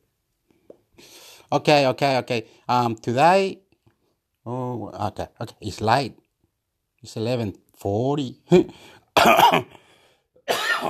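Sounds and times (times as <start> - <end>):
speech: 1.5 - 3.6, 4.4 - 6.2, 7.0 - 9.8, 10.5 - 10.8
person coughing: 9.2 - 10.8.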